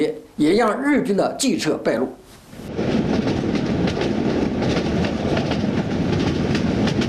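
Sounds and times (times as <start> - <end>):
speech: 0.0 - 2.9
passing train wheels clacking on rails: 2.6 - 7.0.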